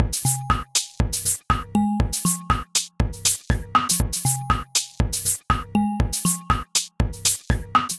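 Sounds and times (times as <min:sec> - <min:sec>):
drum kit: 0:00.0 - 0:07.9.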